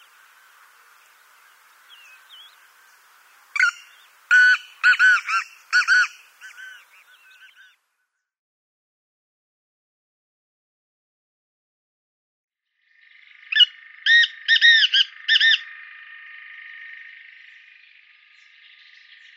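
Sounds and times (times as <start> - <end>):
Black francolin giving grating harsh rhythmic calls: 0.0 - 7.8, 13.2 - 15.7.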